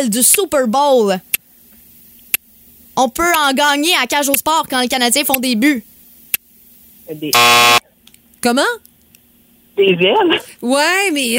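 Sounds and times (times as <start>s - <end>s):
speech: 0.0s - 1.4s, 3.0s - 5.9s, 7.1s - 7.8s, 8.4s - 8.9s, 9.8s - 11.3s
loud harsh game buzzer: 7.4s - 7.8s.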